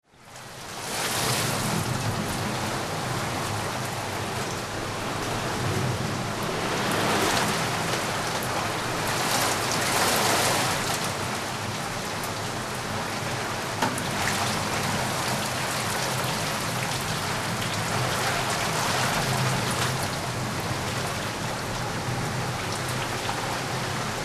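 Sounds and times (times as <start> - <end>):
pleasant rain: 0.0 - 24.2.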